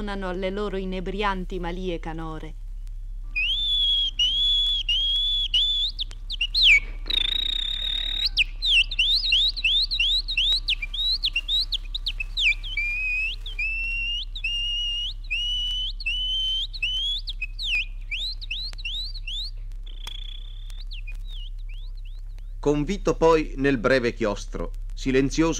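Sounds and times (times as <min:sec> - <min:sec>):
speech: 0:00.0 - 0:02.6, 0:22.6 - 0:25.5
steady low hum: 0:00.0 - 0:25.5
person whistling an imitation of nightingale song: 0:03.3 - 0:22.2.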